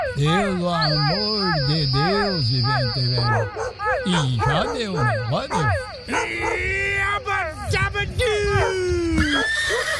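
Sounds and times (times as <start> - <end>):
speech: 0.2 - 9.9
horse neighing: 9.2 - 9.9.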